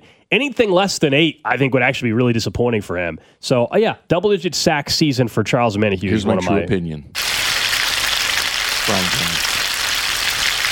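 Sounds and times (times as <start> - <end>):
speech: 0.3 - 7.2, 8.9 - 9.4
voice: 6.0 - 6.8
food sizzling in a frying pan: 7.2 - 10.7.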